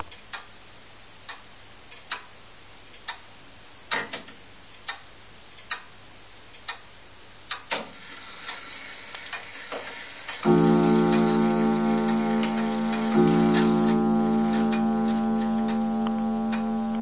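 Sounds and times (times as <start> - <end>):
round gong strike: 10.5 - 16.9.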